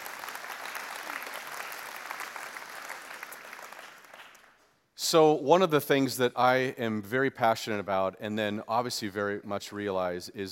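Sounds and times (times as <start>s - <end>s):
church audience applauding: 0.0s - 4.7s
speech: 5.1s - 10.5s.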